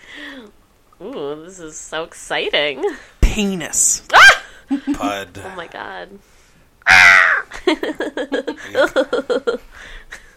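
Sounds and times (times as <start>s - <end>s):
speech: 0.4s - 6.4s, 7.7s - 10.2s
crow cawing: 6.9s - 7.4s.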